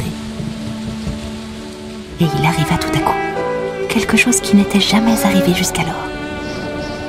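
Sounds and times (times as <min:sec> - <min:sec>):
low rumbling thuds: 0:00.0 - 0:03.7
heavy rain pouring down: 0:00.0 - 0:07.0
speech: 0:02.2 - 0:03.4, 0:04.0 - 0:06.2.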